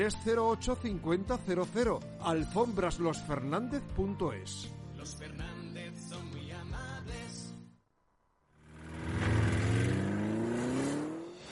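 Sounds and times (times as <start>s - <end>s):
speech: 0.0s - 7.2s
car engine revving: 8.6s - 11.5s.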